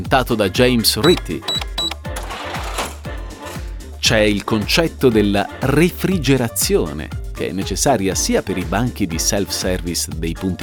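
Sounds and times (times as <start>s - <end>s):
speech: 0.0s - 1.6s, 4.1s - 10.6s
mechanical cash register bell ding: 1.0s - 2.1s
mechanical cash register crank and drawer clunking: 1.1s - 2.8s.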